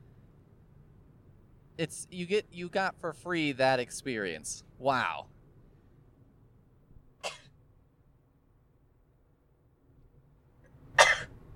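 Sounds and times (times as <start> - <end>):
speech: 1.8 - 5.4
sneezes away from the microphone: 7.2 - 7.5, 11.0 - 11.4.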